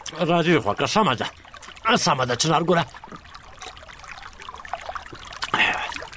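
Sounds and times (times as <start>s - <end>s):
liquid gushing and splashing: 0.0s - 6.1s
speech: 0.1s - 3.2s
person gulping a sweet orange soft drink: 4.5s - 6.1s.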